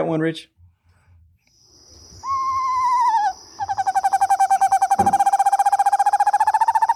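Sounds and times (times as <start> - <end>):
speech: 0.1 - 0.6
small screech owl calling with a hoarse whinnying trill: 2.2 - 6.9.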